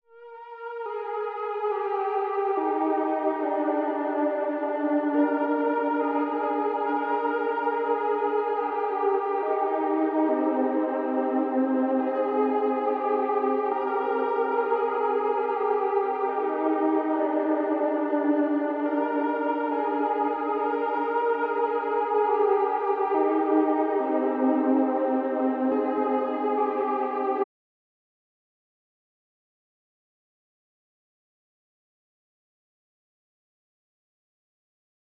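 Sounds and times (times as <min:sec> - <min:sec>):
ambient lead melody in C minor: 0:00.8 - 0:27.4.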